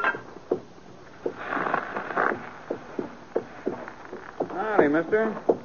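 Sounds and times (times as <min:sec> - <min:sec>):
limping horse's hooves clip-clopping with a loose split shoe at a blacksmith shop: 0:00.1 - 0:05.6
scuffing and rustling movement: 0:01.1 - 0:05.5
person speaking: 0:04.5 - 0:05.5.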